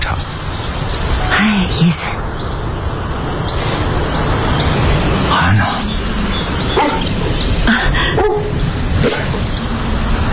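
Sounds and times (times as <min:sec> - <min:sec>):
steady broadband noise: 0:00.0 - 0:10.3
speech: 0:01.4 - 0:02.3
dog barking on a farm: 0:06.7 - 0:07.3, 0:08.2 - 0:09.4.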